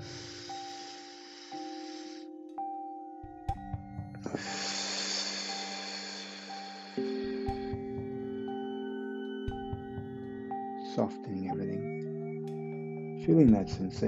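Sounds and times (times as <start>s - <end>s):
longer breathy exhale through the mouth: 0.0s - 2.4s, 4.3s - 7.7s
slow long airy inhale through the nose: 0.0s - 2.4s, 4.3s - 7.6s
soft sustained musical drone: 0.0s - 14.0s
speech: 4.3s - 4.6s, 11.0s - 11.9s, 13.3s - 14.0s.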